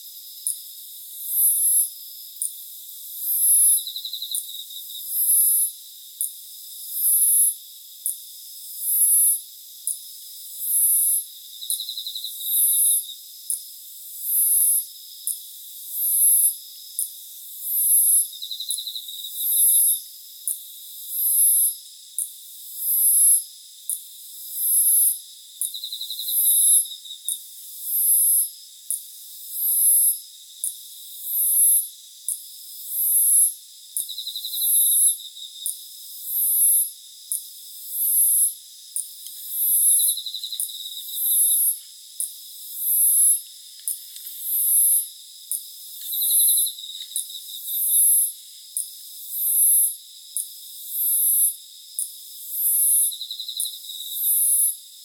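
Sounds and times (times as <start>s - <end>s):
Teleogryllus emma chirping: 0.0s - 55.0s
Hexacentrus hareyamai chirping: 39.4s - 41.8s, 46.0s - 48.2s.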